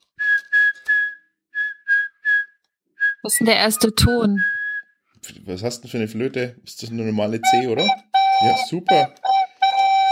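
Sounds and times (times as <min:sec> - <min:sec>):
person whistling a Christmas tune: 0:00.2 - 0:05.0, 0:07.4 - 0:10.1
speech: 0:03.2 - 0:04.6, 0:05.3 - 0:09.2.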